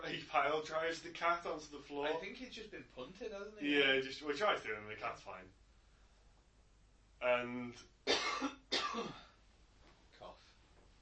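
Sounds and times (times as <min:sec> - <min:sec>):
speech: 0:00.1 - 0:05.6, 0:07.2 - 0:09.2
quiet harsh cough with a throaty voiced tail: 0:08.1 - 0:09.4.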